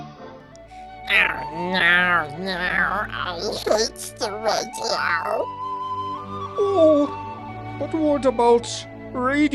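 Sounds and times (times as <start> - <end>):
cat meowing: 1.1 - 5.5
speech: 1.1 - 5.6, 6.6 - 7.2, 7.8 - 9.5.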